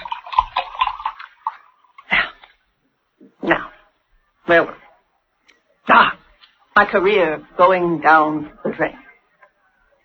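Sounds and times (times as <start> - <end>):
drink poured into a small glass: 0.0 - 2.6
speech: 4.5 - 4.8, 6.8 - 9.0.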